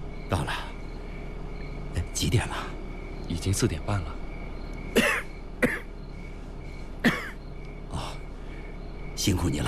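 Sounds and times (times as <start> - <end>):
speech: 0.3 - 0.7, 2.2 - 4.2, 9.2 - 9.6
man coughing harshly and hoarsely: 4.9 - 5.9, 7.0 - 7.4.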